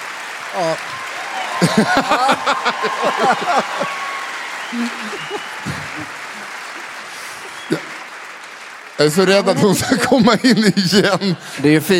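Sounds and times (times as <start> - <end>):
audience applause: 0.0 - 11.9
cheers and voices calling out: 0.4 - 7.8
speech: 0.5 - 1.0, 1.7 - 4.1, 4.7 - 6.6, 7.7 - 7.9, 9.0 - 11.9
laughter: 0.6 - 8.1, 9.2 - 11.9.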